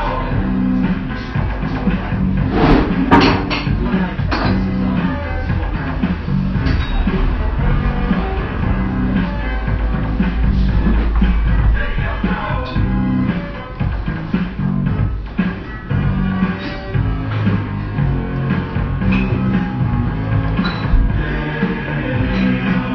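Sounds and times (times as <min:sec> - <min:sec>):
low rumbling undertones in a café: 0:00.0 - 0:22.9
sharp clinks of cups and dishes in a café: 0:20.6 - 0:21.0.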